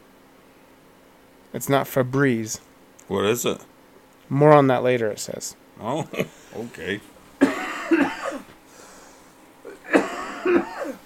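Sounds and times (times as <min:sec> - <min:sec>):
speech: 0:01.5 - 0:03.7, 0:04.3 - 0:07.1
person coughing: 0:07.4 - 0:08.5, 0:09.7 - 0:11.0.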